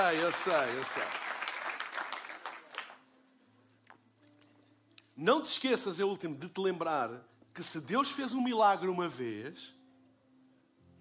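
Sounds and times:
speech: 0.0 - 1.3, 5.2 - 9.8
audience applause: 0.0 - 3.0.

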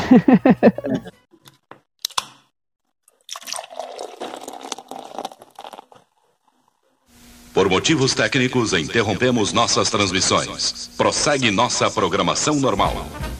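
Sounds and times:
laughter: 0.0 - 1.2
speech: 0.1 - 1.2, 7.6 - 13.3
water pouring and splashing: 3.2 - 6.2
person sipping water: 3.2 - 6.8.

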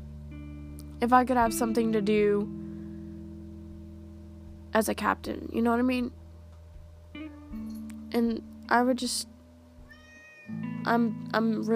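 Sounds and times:
speech: 1.0 - 2.6, 4.7 - 6.2, 8.2 - 9.3, 10.5 - 11.7
pet cat meowing: 9.8 - 10.6.

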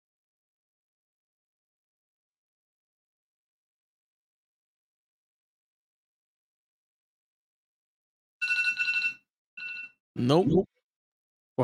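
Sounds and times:
phone alarm ringing: 8.4 - 10.0
person speaking: 10.2 - 10.7.

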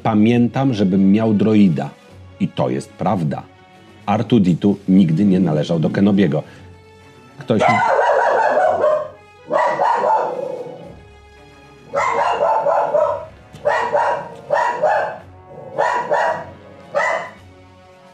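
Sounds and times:
speech: 0.1 - 3.5, 4.1 - 6.6, 7.4 - 8.0
dog barking through a door at someone walking up the stairs: 7.6 - 11.0, 11.9 - 17.4.

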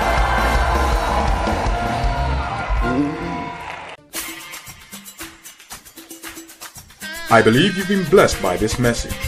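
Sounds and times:
audience clapping at a worship service: 0.0 - 4.0
large audience at a worship service shouting and screaming: 0.0 - 4.0
speech: 7.3 - 9.2.

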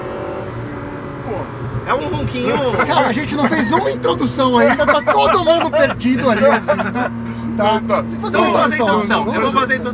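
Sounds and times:
Ferrari 456 GT engine rumbling: 0.0 - 9.9
speech: 1.3 - 9.9
laughter: 2.3 - 7.3.

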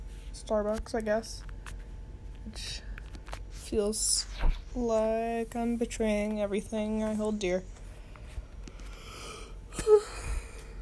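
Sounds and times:
speech: 0.4 - 1.5, 2.5 - 2.9, 3.7 - 7.8
person yawning: 9.3 - 10.6.

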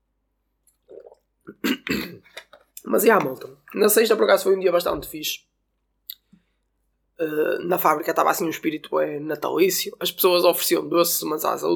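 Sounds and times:
person gulping and swallowing water: 0.7 - 2.9
speech: 2.9 - 5.5, 7.2 - 11.7.

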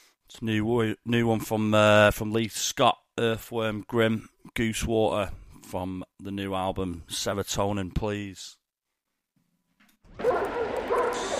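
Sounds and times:
speech: 0.4 - 8.6
dog barking: 10.2 - 11.3.

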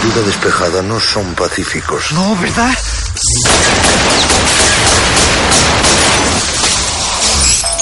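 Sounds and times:
speech: 0.1 - 4.4
gunfire riddling a car with holes: 3.4 - 7.2.

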